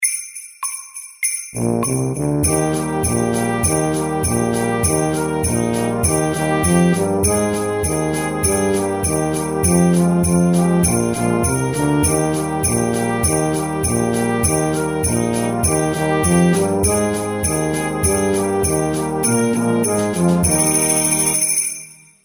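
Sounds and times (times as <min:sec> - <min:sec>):
fast Christmas tune: 0:00.0 - 0:22.2.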